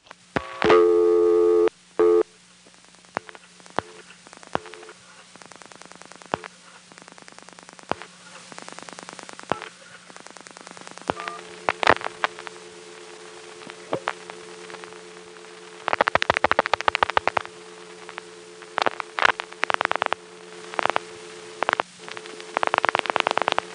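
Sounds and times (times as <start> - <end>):
low constant hum: 0.0 - 23.7
steady buzzing tone on a step-by-step tandem telephone exchange: 0.3 - 23.7
brief second tone on a telephone exchange: 0.4 - 2.3, 11.1 - 12.0.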